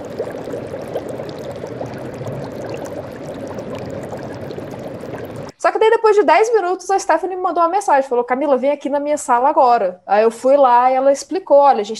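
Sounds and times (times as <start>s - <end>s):
bubbling water in a potion-mixing setup: 0.0s - 5.5s
speech: 5.6s - 11.9s.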